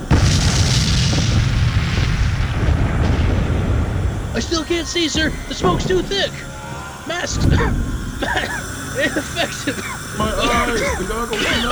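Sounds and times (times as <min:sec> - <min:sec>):
artillery gun firing a shell: 0:00.0 - 0:08.5
deep rumbling roar: 0:00.0 - 0:11.7
laughter: 0:02.4 - 0:11.7
speech: 0:04.4 - 0:11.7.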